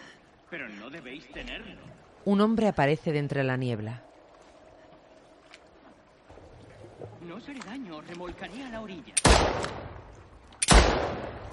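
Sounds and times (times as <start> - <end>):
speech: 0.5 - 4.1, 7.2 - 9.8
pistol gunshot fired blindly in fog near a shore: 9.2 - 9.8, 10.6 - 11.4.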